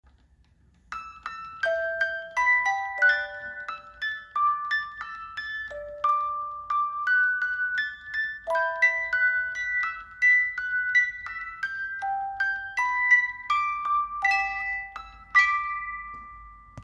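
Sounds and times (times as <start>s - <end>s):
18-note customizable wooden music box melody: 0.7s - 16.8s.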